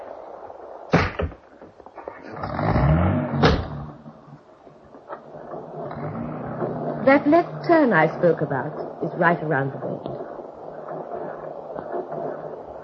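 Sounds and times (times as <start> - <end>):
car engine starting: 2.0 - 8.9
car engine revving and driving off: 2.2 - 5.1, 5.8 - 8.1
speech: 7.1 - 10.2.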